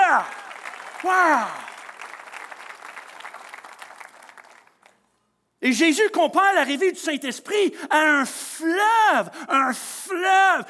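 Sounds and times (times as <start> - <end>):
audience applause: 0.0 - 5.0
speech: 0.2 - 0.4, 1.0 - 1.7, 5.6 - 10.6.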